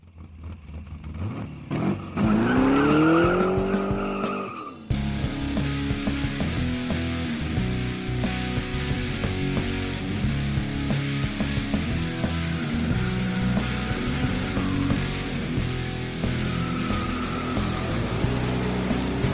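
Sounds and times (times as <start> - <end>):
road noise: 0.0 - 19.3
rumbling car engine: 0.0 - 19.3
car tires screeching while skidding: 0.4 - 4.9, 12.5 - 19.3.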